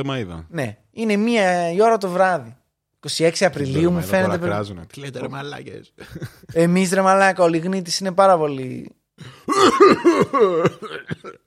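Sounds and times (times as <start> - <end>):
speech: 0.0 - 11.4
person coughing: 9.2 - 11.4.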